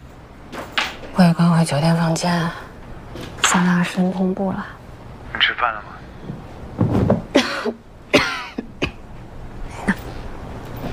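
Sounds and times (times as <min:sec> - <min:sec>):
speech: 0:01.2 - 0:04.8, 0:05.4 - 0:06.1
person coughing from a chill caught while underdressed in windy weather in Shanghai: 0:07.3 - 0:09.0.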